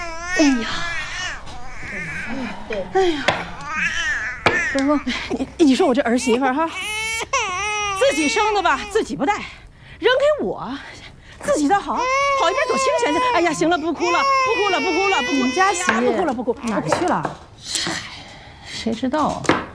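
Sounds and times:
adult woman speaking soothingly: 0.0 - 6.9, 8.0 - 19.4
baby crying: 0.0 - 9.2, 11.9 - 17.0.

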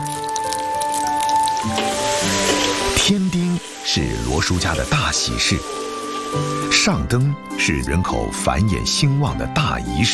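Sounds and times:
Hakka sweet rice cake slices pan-frying in hot oil over low heat: 0.0 - 6.8
speech: 3.1 - 10.1.

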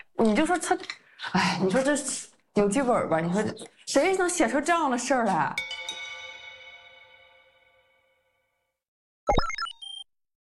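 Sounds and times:
speech: 0.2 - 5.7
bell-like phone message notification tone: 5.6 - 8.1.

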